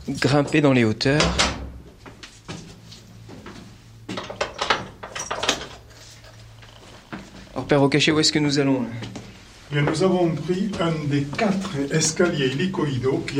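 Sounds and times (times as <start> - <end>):
speech: 0.1 - 1.5, 7.7 - 13.3
small door clunks and rattling knocks: 1.2 - 1.8.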